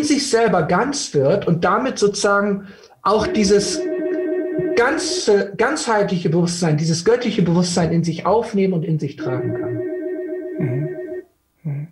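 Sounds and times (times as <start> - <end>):
speech: 0.0 - 4.0, 4.8 - 9.9
telephone ringing with an electronic warble: 3.2 - 5.3, 9.2 - 11.2.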